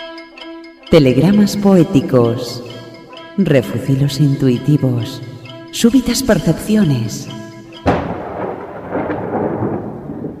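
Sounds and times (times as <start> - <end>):
speech: 0.9 - 2.7, 3.4 - 7.4
thunder in a summer night storm: 7.8 - 10.3.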